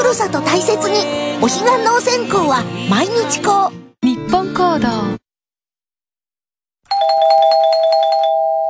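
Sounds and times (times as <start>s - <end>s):
speech: 0.1s - 3.8s, 4.3s - 5.2s
quiz deadline chime of bright bell-like notes: 6.9s - 8.6s.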